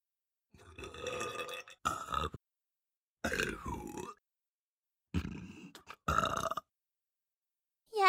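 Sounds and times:
loud drawn-out croaky burps: 0:00.6 - 0:02.4, 0:03.2 - 0:04.2, 0:05.1 - 0:06.7.

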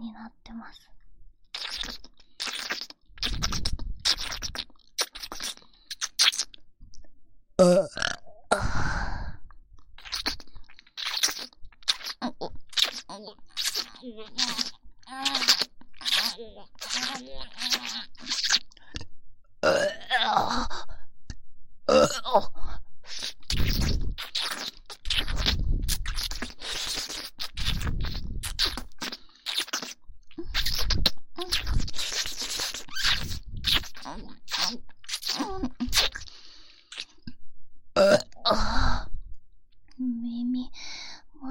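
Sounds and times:
quiet whispered sounds: 0:00.0 - 0:01.0, 0:40.0 - 0:40.8
speech: 0:00.0 - 0:01.0, 0:07.6 - 0:08.0
soft breathy mouth noises: 0:01.5 - 0:07.1, 0:07.7 - 0:19.8, 0:22.2 - 0:37.4
burping close to the microphone: 0:07.6 - 0:08.6, 0:19.6 - 0:20.3, 0:21.9 - 0:22.3, 0:38.0 - 0:38.6.

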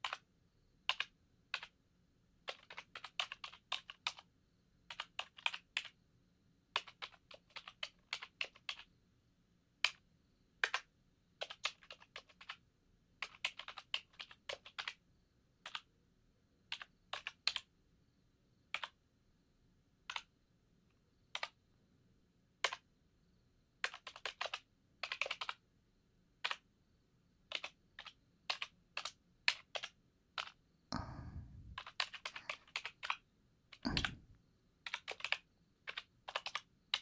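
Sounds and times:
keys pressed on a computer keyboard: 0:00.0 - 0:01.8, 0:02.4 - 0:04.3, 0:04.9 - 0:06.0, 0:06.7 - 0:08.9, 0:09.8 - 0:10.0, 0:10.6 - 0:12.6, 0:13.2 - 0:15.0, 0:15.6 - 0:15.9, 0:16.7 - 0:17.7, 0:18.7 - 0:19.0, 0:20.0 - 0:20.3, 0:21.3 - 0:21.6, 0:22.6 - 0:22.9, 0:23.8 - 0:25.6, 0:26.4 - 0:26.7, 0:27.4 - 0:36.9.

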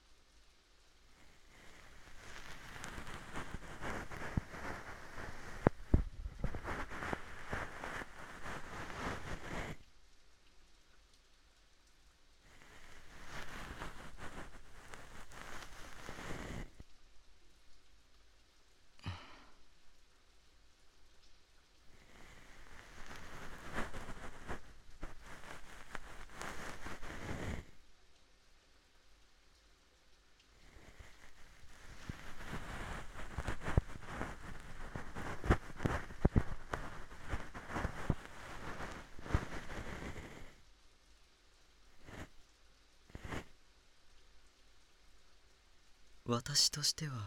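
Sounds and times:
fluffy bonten ear-cleaning brush rustling against the ear: 0:01.3 - 0:09.8, 0:12.5 - 0:16.8, 0:22.0 - 0:27.6, 0:30.7 - 0:40.5
speech: 0:46.3 - 0:47.2.

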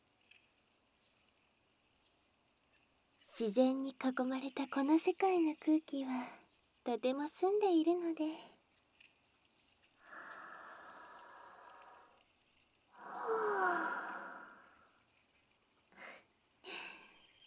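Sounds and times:
speech: 0:03.4 - 0:08.6
person breathing deeply outdoors: 0:10.1 - 0:12.1, 0:13.0 - 0:14.9.

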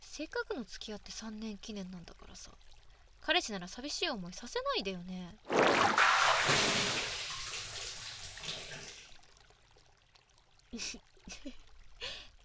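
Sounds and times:
speech: 0:00.2 - 0:02.6, 0:03.2 - 0:07.2, 0:10.8 - 0:11.6
hot bath water gushing as it overflows a tub: 0:05.4 - 0:12.4.

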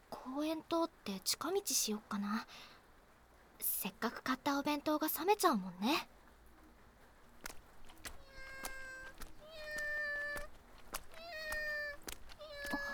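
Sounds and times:
speech: 0:00.3 - 0:02.8, 0:03.6 - 0:06.1
cat meowing with drawn-out tonal cries: 0:08.1 - 0:12.9.

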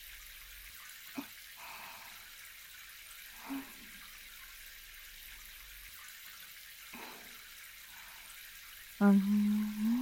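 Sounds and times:
warm running water wetting hair during a hair wash: 0:00.0 - 0:09.9
speech: 0:09.0 - 0:09.4.

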